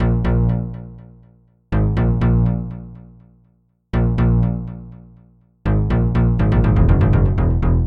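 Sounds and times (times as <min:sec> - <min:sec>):
swinging bass line: 0:00.0 - 0:00.9, 0:01.7 - 0:03.1, 0:04.0 - 0:04.9, 0:05.6 - 0:07.8.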